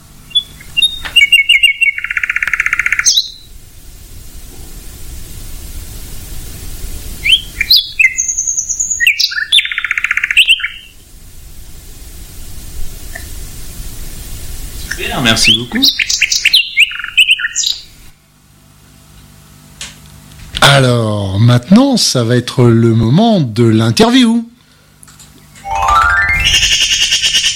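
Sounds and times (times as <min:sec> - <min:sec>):
nightingale singing: 0:00.3 - 0:03.5, 0:07.2 - 0:11.0, 0:15.4 - 0:17.8, 0:25.7 - 0:27.5
steady soft hiss: 0:03.5 - 0:09.0, 0:10.7 - 0:15.4
speech: 0:15.2 - 0:16.1, 0:20.8 - 0:24.5.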